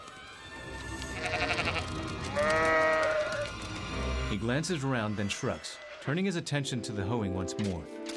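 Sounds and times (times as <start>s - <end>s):
sheep bleating in panic running around in a pen: 1.0s - 3.6s
speech: 4.3s - 8.0s.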